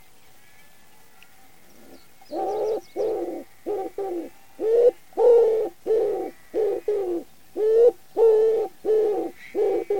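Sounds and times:
common wood pigeon cooing: 1.8s - 9.9s.

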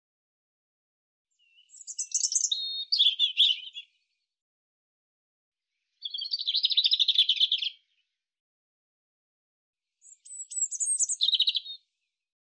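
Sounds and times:
European robin singing high twittering warbled phrases: 1.3s - 4.2s, 5.8s - 8.1s, 10.0s - 12.0s.

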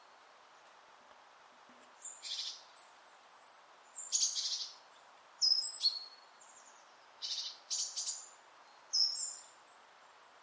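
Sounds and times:
great tit rasping churrs and high whistled notes: 2.0s - 2.6s, 4.0s - 4.8s, 7.2s - 9.5s.

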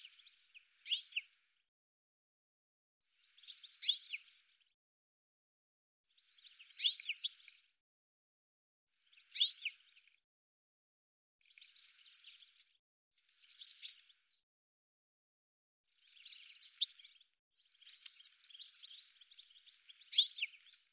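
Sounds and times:
bird chirps: 0.0s - 1.3s, 3.4s - 4.4s, 6.2s - 7.6s, 9.1s - 9.9s, 11.5s - 14.4s, 16.0s - 20.9s.

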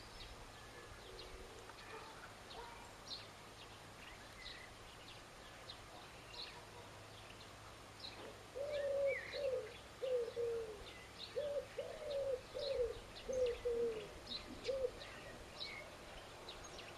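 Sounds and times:
bird hooting coo-like notes: 8.5s - 15.4s.

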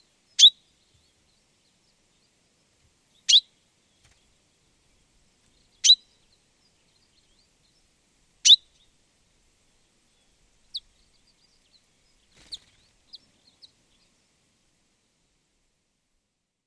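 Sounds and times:
common chaffinch calls: 0.3s - 1.9s, 3.1s - 3.6s, 5.5s - 9.0s, 9.7s - 14.2s.

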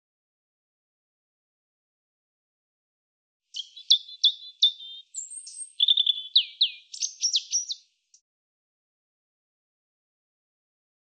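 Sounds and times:
European robin song: 3.5s - 8.2s.

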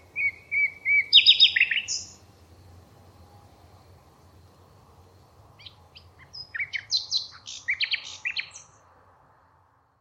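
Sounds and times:
bird twittering: 0.2s - 2.2s, 5.6s - 8.7s.

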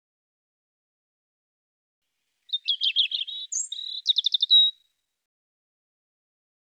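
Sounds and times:
European robin singing: 2.5s - 4.8s.

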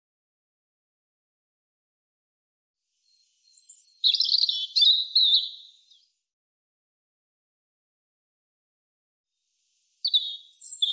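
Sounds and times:
European robin singing: 3.0s - 6.1s, 9.7s - 10.9s.

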